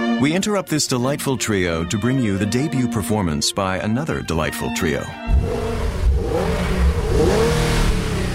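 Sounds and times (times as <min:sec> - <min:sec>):
speech: 0:00.2 - 0:05.9
turbocharged sports sedan engine revving: 0:05.3 - 0:08.3.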